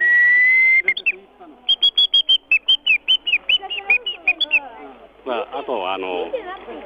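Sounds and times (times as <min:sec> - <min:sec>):
tree nut bird-call whistle imitating a Japanese bush warbler: 0:00.0 - 0:04.7
speech: 0:05.7 - 0:06.8.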